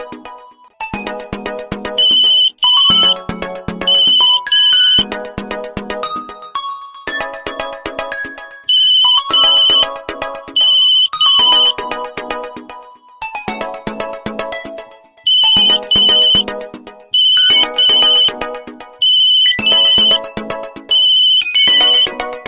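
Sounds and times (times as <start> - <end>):
modern clock alarm: 2.0 - 3.3, 3.8 - 5.0, 8.7 - 10.0, 10.6 - 11.8, 15.3 - 16.4, 17.2 - 18.4, 19.0 - 20.3, 20.9 - 22.2.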